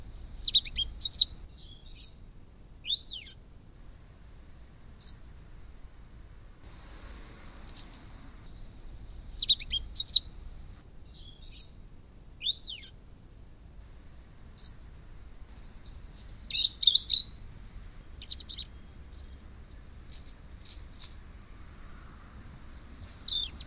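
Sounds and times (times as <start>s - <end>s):
Prunella modularis dunnock subsong: 0.0s - 2.2s, 7.7s - 10.4s, 11.0s - 11.8s, 12.4s - 13.0s, 14.6s - 14.8s, 15.6s - 19.8s, 23.0s - 23.6s.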